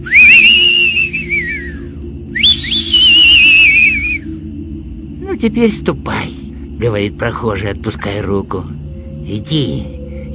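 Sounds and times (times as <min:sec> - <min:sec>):
long wavering whistles carried by the wind: 0:00.0 - 0:05.2
steady low wind rumble: 0:00.0 - 0:10.3
speech: 0:05.4 - 0:10.3.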